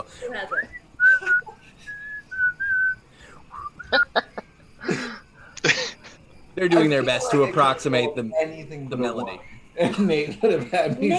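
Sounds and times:
speech: 0:00.1 - 0:00.8, 0:06.6 - 0:11.1
person whistling a tune imitating birds: 0:00.5 - 0:04.1
laughter: 0:03.7 - 0:07.9, 0:09.8 - 0:11.1.

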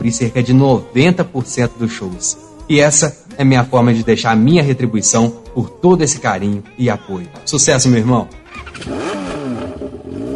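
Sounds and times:
speech: 0:00.0 - 0:09.3
motorcycle engine revving: 0:08.4 - 0:10.3.

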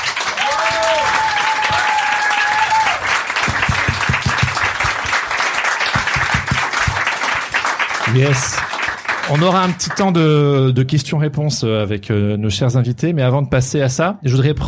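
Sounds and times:
audience applauding the invited guests: 0:00.0 - 0:10.7
cheers or whistles: 0:00.3 - 0:03.1
speech: 0:08.1 - 0:08.7, 0:09.3 - 0:14.6.

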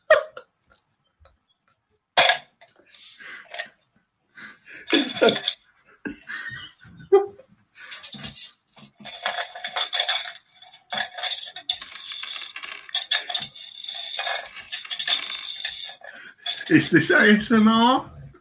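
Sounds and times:
coins clinking and jangling as they are dropped and shuffled: 0:04.9 - 0:05.6, 0:07.9 - 0:17.5
speech: 0:04.9 - 0:05.6, 0:16.7 - 0:18.2.

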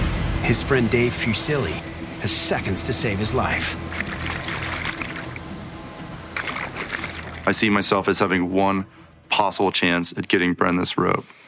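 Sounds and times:
speech: 0:00.5 - 0:04.1, 0:07.4 - 0:11.4
rushing river water: 0:02.2 - 0:08.0.

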